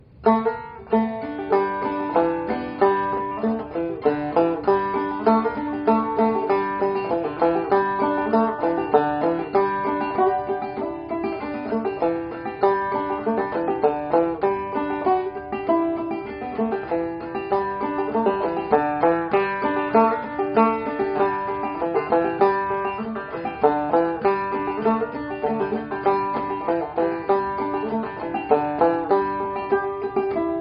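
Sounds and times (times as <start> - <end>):
banjo playing: 0.0 - 30.5.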